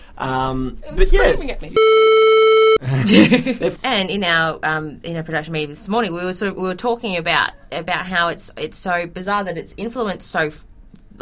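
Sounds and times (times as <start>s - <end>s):
speech: 0.2s - 2.2s, 2.8s - 11.2s
loud piercing electronic alarm tone: 1.8s - 2.8s.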